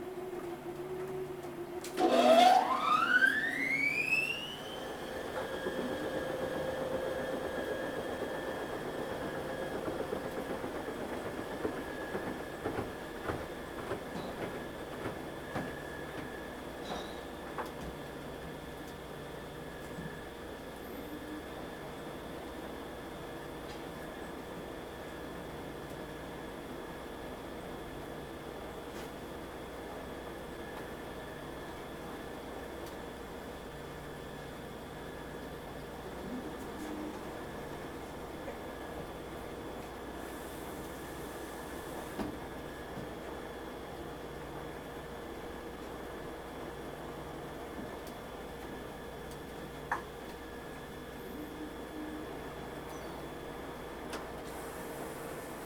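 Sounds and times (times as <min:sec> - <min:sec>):
laundry washer spin cycle: 0:00.0 - 0:55.6.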